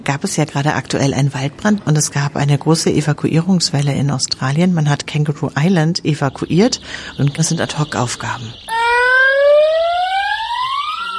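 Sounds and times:
speech: 0:00.1 - 0:08.8
electronic alarm siren warning holidaymakers at a hotel: 0:06.3 - 0:11.1.

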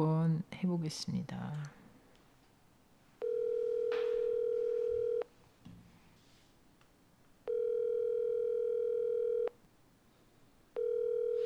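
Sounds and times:
speech: 0:00.0 - 0:01.8
telephone ringback tone through an earpiece: 0:03.2 - 0:05.3, 0:07.5 - 0:09.5, 0:10.8 - 0:11.4.

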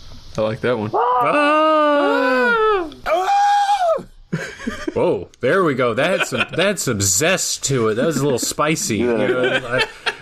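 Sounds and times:
speech: 0:00.4 - 0:03.0, 0:05.0 - 0:10.1
person screaming: 0:00.9 - 0:04.1
laughter: 0:06.0 - 0:06.8, 0:07.9 - 0:10.2.

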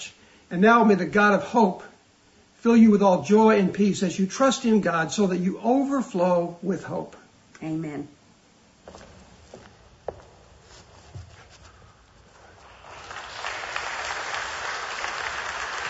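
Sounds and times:
speech: 0:00.5 - 0:01.9, 0:02.6 - 0:08.2
crowd of people applauding: 0:12.5 - 0:15.8.

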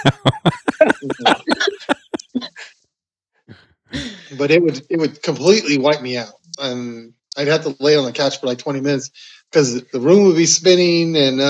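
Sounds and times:
speech: 0:00.0 - 0:01.4, 0:04.5 - 0:11.4
person coughing harshly: 0:00.0 - 0:02.2
laughter: 0:00.0 - 0:02.7, 0:04.0 - 0:10.2, 0:11.2 - 0:11.4.

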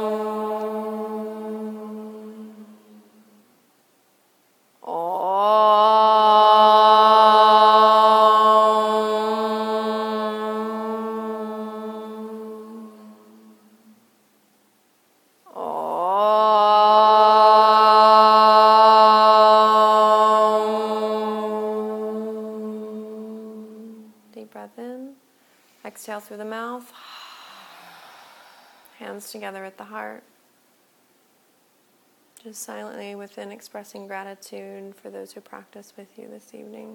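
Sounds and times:
group chanting om in long low droning tones: 0:00.0 - 0:03.6, 0:04.8 - 0:14.1, 0:15.4 - 0:24.4, 0:26.9 - 0:29.2
speech: 0:26.3 - 0:27.0, 0:29.2 - 0:30.3, 0:32.4 - 0:36.9.

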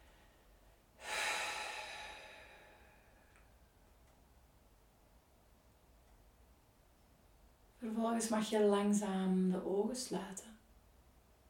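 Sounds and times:
deep breath in through the nose and out through the mouth at a body-scan meditation: 0:01.0 - 0:03.4
speech: 0:07.8 - 0:10.6.

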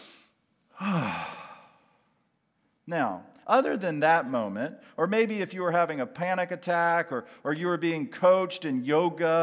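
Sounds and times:
group of people taking a deep breath together: 0:00.0 - 0:02.2
speech: 0:02.9 - 0:09.4.

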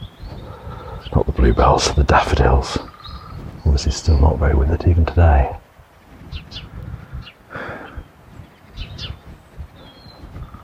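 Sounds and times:
faint birdsong: 0:00.0 - 0:10.6
steady outdoor rumble: 0:00.0 - 0:10.6
woodpecker giving sharp high calls: 0:00.0 - 0:10.6
speech: 0:01.1 - 0:02.9, 0:03.8 - 0:05.6.

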